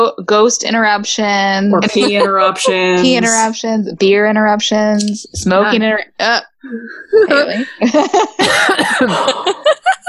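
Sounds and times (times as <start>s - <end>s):
speech: 0.0s - 10.0s
laughter: 1.8s - 3.4s, 6.9s - 10.0s
person coughing in rough harsh bursts: 8.4s - 9.6s.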